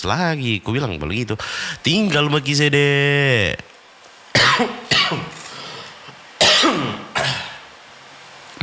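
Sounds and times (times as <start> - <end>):
speech: 0.0 - 3.7, 4.4 - 5.4
person coughing: 4.4 - 7.7.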